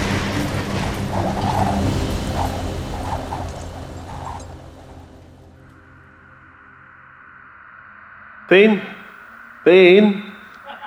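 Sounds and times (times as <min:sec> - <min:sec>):
heavy monorail car tipping over and descending with mechanical rumble: 0:00.0 - 0:06.7
speech: 0:08.5 - 0:08.9, 0:09.6 - 0:10.3.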